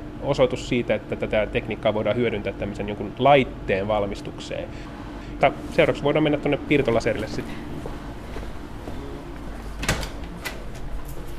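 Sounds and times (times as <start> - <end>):
steady low hum: 0.0 - 11.3
speech: 0.2 - 7.8
door of a light lock to a spectroscopy laboratory clunking open: 9.7 - 11.3.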